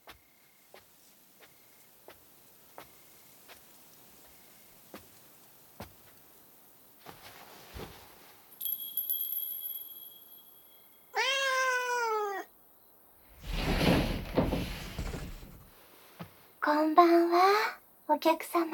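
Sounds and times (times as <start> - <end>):
rustling scraping noise: 7.0 - 8.5, 13.3 - 16.6
Siamese cat meowing: 11.2 - 12.5
speech: 16.7 - 18.7.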